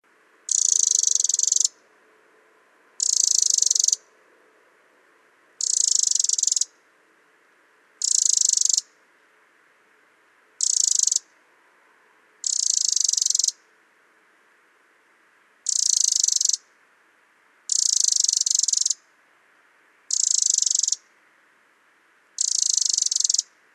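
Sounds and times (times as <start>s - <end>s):
Eurasian Wren Troglodytes troglodytes: 0.4s - 1.8s, 3.0s - 4.1s, 5.6s - 6.8s, 8.0s - 9.0s, 10.6s - 11.4s, 12.4s - 13.7s, 15.6s - 16.8s, 17.7s - 19.1s, 20.1s - 21.1s, 22.3s - 23.6s.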